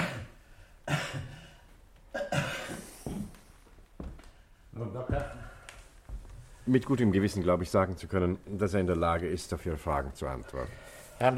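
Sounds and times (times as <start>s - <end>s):
man coughing during a doctor's chest examination: 0.0s - 3.4s
breathy throat clearing: 0.0s - 3.5s
speech: 6.7s - 11.3s.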